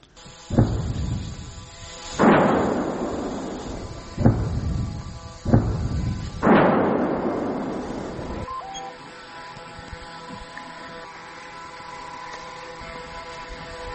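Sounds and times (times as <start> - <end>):
heavy artillery blasts: 0.5 - 8.5.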